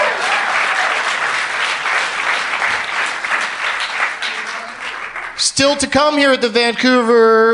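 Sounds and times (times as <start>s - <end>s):
audience applause at a comedy festival in Vancouver: 0.0s - 5.8s
speech: 5.6s - 7.5s.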